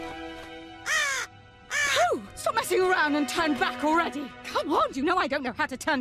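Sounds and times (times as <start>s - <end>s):
raven giving a loud harsh caw: 0.7s - 2.1s
speech: 3.1s - 5.9s.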